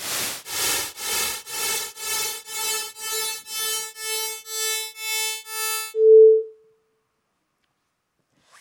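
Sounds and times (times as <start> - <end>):
repeated bursts of hissy noise demonstrating pitch perception: 0.0 - 3.2
clear pure tone: 1.5 - 6.8.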